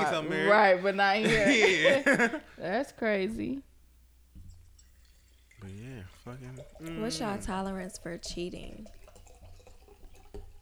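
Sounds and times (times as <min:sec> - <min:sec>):
laughter: 0:00.0 - 0:02.6
speech: 0:00.1 - 0:03.7, 0:05.6 - 0:09.0
liquid pouring into a glass: 0:04.4 - 0:10.5.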